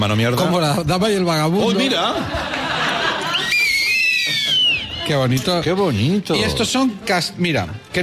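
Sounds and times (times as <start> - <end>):
speech: 0.0 - 2.6, 5.1 - 8.0
laughter: 1.6 - 6.1
two whistles knotted together blown at once: 3.3 - 5.1.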